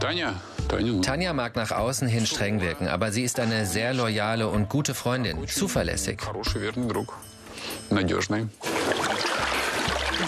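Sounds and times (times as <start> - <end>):
speech: 0.0 - 9.0
hot water being poured into ears: 8.6 - 10.2.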